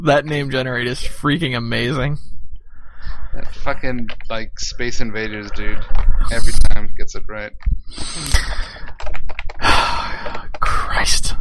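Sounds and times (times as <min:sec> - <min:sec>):
speech: 0:00.0 - 0:02.4, 0:03.0 - 0:08.8, 0:11.0 - 0:11.3
fast typing on a computer keyboard: 0:08.3 - 0:10.9.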